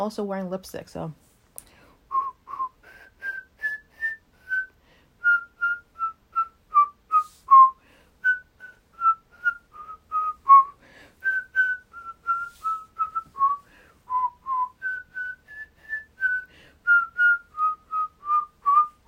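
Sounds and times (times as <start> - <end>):
speech: 0.0 - 1.3
person whistling a simple melody: 2.1 - 19.0.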